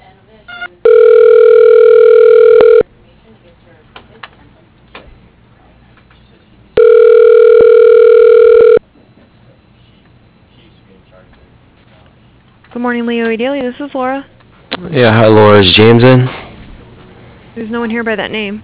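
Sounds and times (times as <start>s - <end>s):
ringback tone on a business phone line while a call is transferred: 0.5s - 2.8s, 6.8s - 8.8s
speech: 12.8s - 16.4s, 17.6s - 18.6s.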